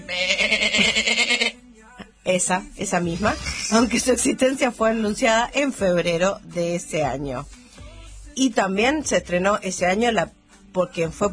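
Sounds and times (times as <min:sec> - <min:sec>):
sheep bleating: 0:00.0 - 0:01.6
speech: 0:02.3 - 0:07.6, 0:08.4 - 0:11.3.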